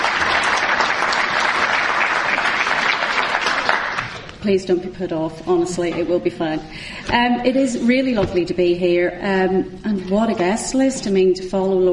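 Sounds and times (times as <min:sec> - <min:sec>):
audience applauding: 0:00.0 - 0:04.3
speech: 0:04.4 - 0:11.9.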